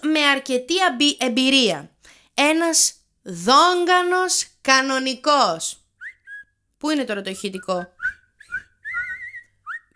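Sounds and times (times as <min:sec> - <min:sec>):
speech: 0:00.1 - 0:05.8, 0:06.8 - 0:08.2
person whistling a short high warbling melody: 0:06.0 - 0:06.6, 0:07.6 - 0:09.9.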